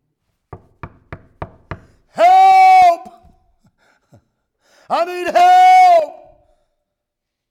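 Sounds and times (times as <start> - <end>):
firm knocks on a door: 0.5 - 2.0
speech: 4.9 - 6.1.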